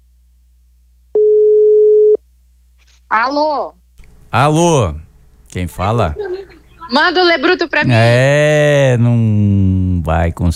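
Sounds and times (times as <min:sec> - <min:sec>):
ringing tone of an outgoing telephone call: 0:01.2 - 0:02.2
speech: 0:03.1 - 0:06.3, 0:06.9 - 0:10.5.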